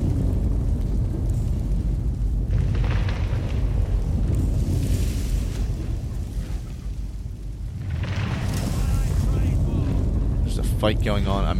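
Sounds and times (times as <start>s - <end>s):
sanctuary burning in a video game: 0.0s - 11.5s
speech: 10.8s - 11.5s.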